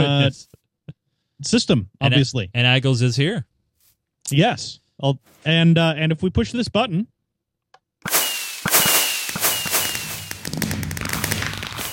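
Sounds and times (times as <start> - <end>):
speech: 0.0 - 0.6, 1.4 - 3.5, 4.2 - 7.1
video game fireworks launching with a whistling rise and bursting: 8.0 - 11.9
sharp crackles and pops of video game fireworks: 8.1 - 11.9.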